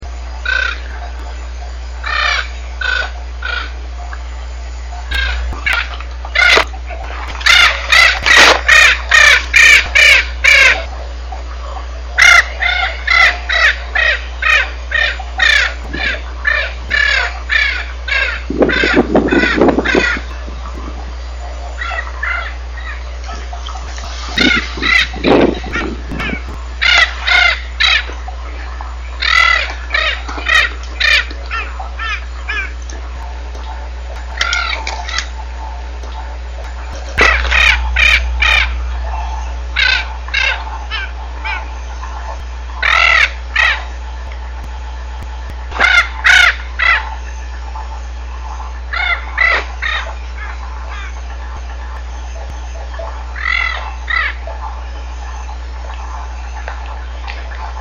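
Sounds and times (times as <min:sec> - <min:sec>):
Spix's macaw: 0:00.4 - 0:01.3, 0:02.0 - 0:04.2, 0:05.0 - 0:10.9, 0:12.2 - 0:20.9, 0:21.7 - 0:35.4, 0:36.0 - 0:44.0, 0:45.6 - 0:57.8.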